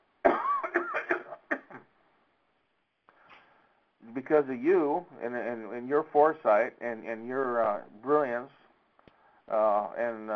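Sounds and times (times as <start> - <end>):
person coughing in a harsh fit: 0.3 - 1.8
speech: 4.3 - 8.6, 9.5 - 10.3.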